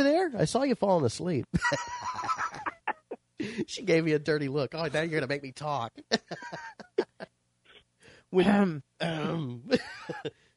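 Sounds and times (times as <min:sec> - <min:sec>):
speech: 0:00.0 - 0:02.4, 0:03.4 - 0:07.1, 0:08.3 - 0:10.4
laughter: 0:01.6 - 0:03.2, 0:06.0 - 0:07.3, 0:09.7 - 0:10.3
person clearing throat with a rasping honk: 0:08.4 - 0:10.3
person coughing sharply: 0:08.4 - 0:10.3.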